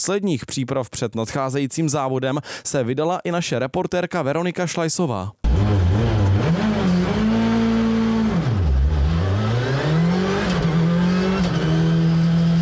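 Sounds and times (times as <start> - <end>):
speech: 0.0 - 5.9
rally car engine revving hard during a test drive near Plzeň, Czech Republic: 5.5 - 12.5.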